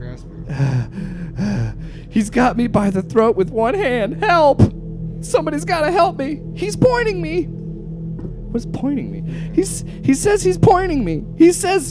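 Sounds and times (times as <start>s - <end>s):
person gasping for breath: 0.5s - 2.1s
speech: 2.2s - 7.6s, 8.5s - 11.8s.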